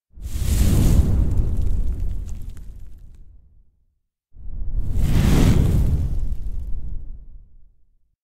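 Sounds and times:
fire moving: 0.2 - 3.2, 4.8 - 7.1.

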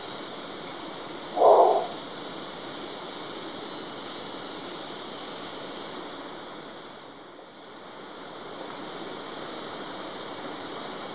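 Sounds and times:
steady hiss: 0.0 - 11.1
long-wattled umbrellabird low hum: 0.6 - 2.2.

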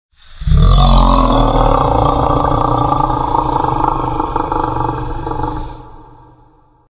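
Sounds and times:
cartoon monster: 0.4 - 6.2.

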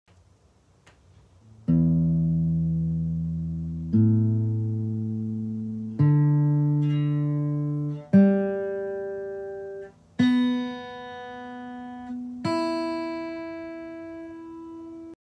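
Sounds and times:
guitar notes: 1.4 - 15.1.

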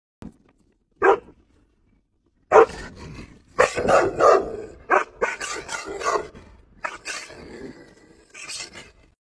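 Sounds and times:
Akita barking: 1.0 - 1.3, 2.5 - 2.8, 3.6 - 7.3.

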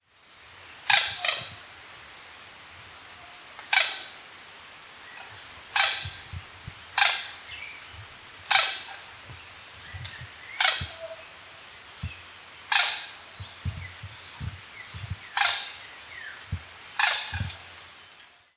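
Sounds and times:
blue coua calling: 5.2 - 17.9.

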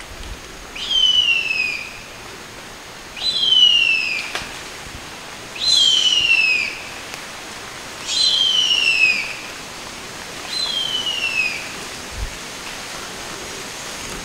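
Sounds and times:
steady hiss: 0.0 - 14.2
Harpy eagle whistled screams: 0.8 - 1.9, 3.2 - 4.2, 5.6 - 6.8, 8.1 - 9.4, 10.5 - 11.7.

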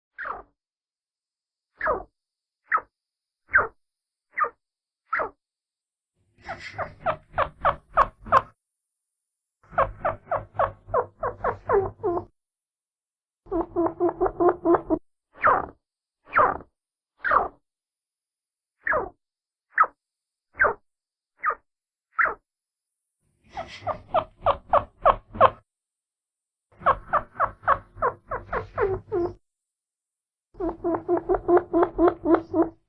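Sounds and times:
chinchilla: 0.1 - 0.5, 1.8 - 5.4, 6.3 - 8.6, 9.6 - 12.3, 13.4 - 17.6, 18.8 - 20.8, 21.4 - 22.4, 23.4 - 25.6, 26.7 - 29.4, 30.6 - 32.8.

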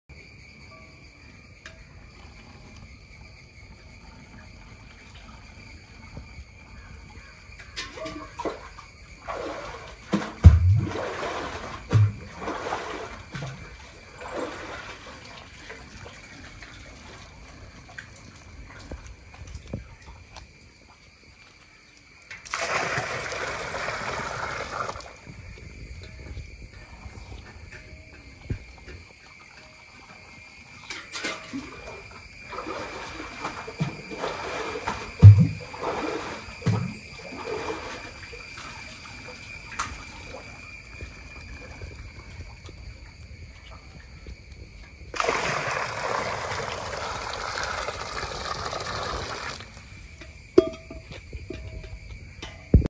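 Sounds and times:
water well: 0.5 - 52.8.

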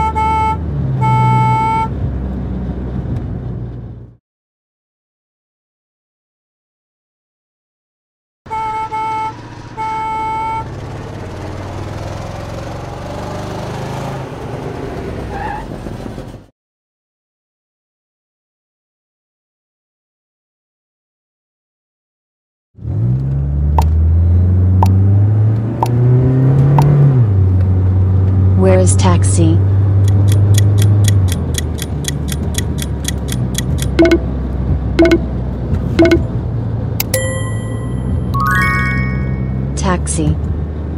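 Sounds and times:
school bus horn honking in short toots: 0.0 - 2.0, 8.5 - 10.8, 33.9 - 34.4, 35.0 - 35.4
school bus engine rumbling and revving: 0.0 - 4.2, 8.5 - 16.5, 22.9 - 40.9
speech: 28.9 - 29.7, 34.0 - 34.3, 35.0 - 35.3, 39.9 - 40.5.

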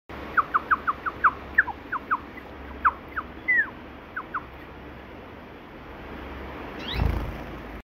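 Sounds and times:
Java sparrow calling: 0.2 - 4.8, 6.8 - 7.3.

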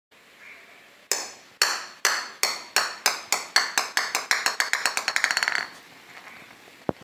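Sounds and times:
plastic ball: 1.1 - 6.4.

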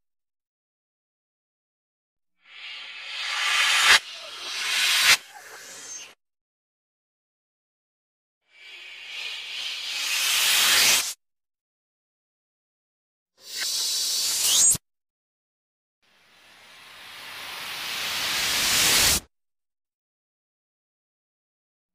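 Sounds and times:
vacuum cleaner: 3.0 - 6.1, 8.7 - 11.1, 16.5 - 19.3.

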